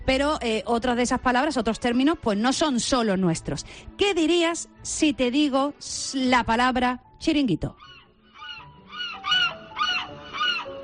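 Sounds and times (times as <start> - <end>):
speech: 0.1 - 7.9
seagull calling near a beach bar in Málaga: 7.7 - 10.8.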